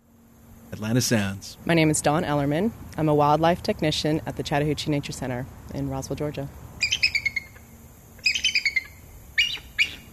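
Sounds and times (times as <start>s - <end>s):
speech: 0.8s - 6.6s
American bald eagle giving high thin chattering calls: 6.8s - 10.1s.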